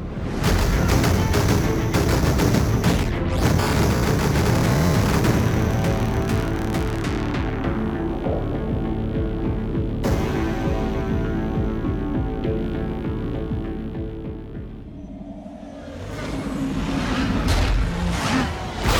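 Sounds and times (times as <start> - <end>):
dense music: 0.0 - 18.8
heavy booming bass drum: 0.4 - 12.5
stuttering digital glitches and crackles: 0.5 - 7.0.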